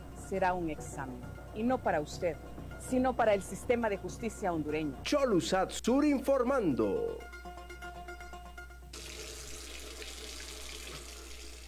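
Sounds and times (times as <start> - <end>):
speech: 0.3 - 7.3
water running from a tap: 8.9 - 11.6.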